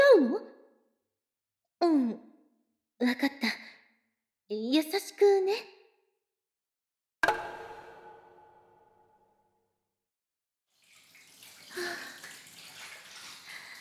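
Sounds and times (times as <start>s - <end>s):
speech: 1.8s - 2.3s, 3.0s - 3.6s, 4.5s - 5.8s
water splashing and running in a bathtub as someone washes: 10.7s - 13.8s.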